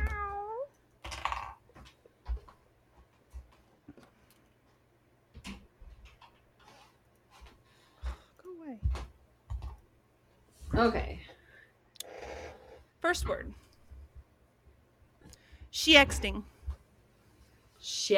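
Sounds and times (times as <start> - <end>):
cat meowing in the room: 0.0 - 0.7
faint noise: 0.0 - 18.1
speech: 10.8 - 11.2, 13.1 - 13.6, 15.8 - 16.5, 17.8 - 18.1.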